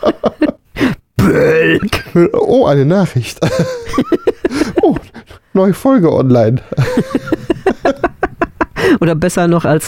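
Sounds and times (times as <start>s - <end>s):
short throaty bursts: 0.9s - 1.9s
person burping: 1.2s - 2.2s
speech: 2.2s - 5.0s, 5.6s - 8.1s, 8.9s - 9.8s
laughter: 3.4s - 5.2s, 6.6s - 8.8s.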